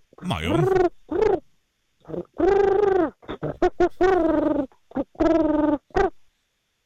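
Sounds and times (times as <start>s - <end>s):
person imitating chimpanzee hooting: 0.2s - 1.4s, 2.1s - 6.1s
speech: 0.3s - 0.9s.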